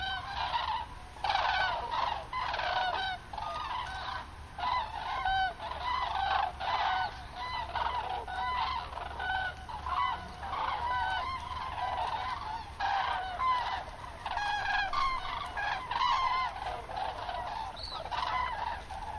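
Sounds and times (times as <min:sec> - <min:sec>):
common cranes Grus grus bugling in a dense chorus: 0:00.0 - 0:19.1.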